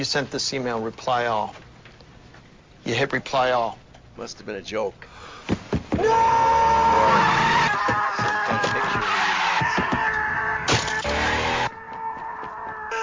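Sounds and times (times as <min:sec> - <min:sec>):
speech: 0:00.0 - 0:01.6, 0:02.8 - 0:06.4
car tires squealing as a car skids: 0:06.2 - 0:11.7.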